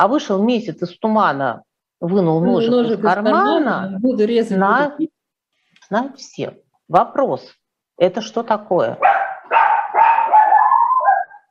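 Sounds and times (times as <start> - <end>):
speech: 0.0 - 5.1, 5.9 - 9.2
dog yelping: 9.0 - 11.5.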